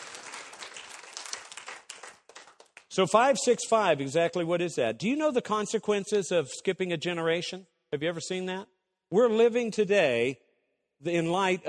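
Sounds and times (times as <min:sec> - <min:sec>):
audience applauding: 0:00.0 - 0:02.9
speech: 0:03.0 - 0:10.4, 0:11.0 - 0:11.6.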